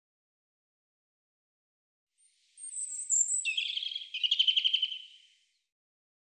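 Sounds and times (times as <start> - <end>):
European robin singing trilled warbling phrase: 2.6 - 5.3.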